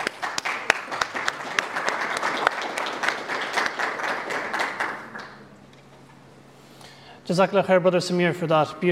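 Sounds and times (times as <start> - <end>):
room full of people applauding: 0.0 - 5.5
sharp individual claps: 0.0 - 5.5
speech: 7.3 - 8.8.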